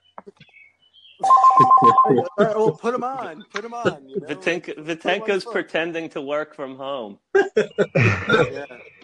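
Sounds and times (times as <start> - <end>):
landline telephone ringing with an electronic trill: 1.2 - 2.4
laughter: 1.5 - 5.2, 7.4 - 8.9
speech: 1.6 - 8.9.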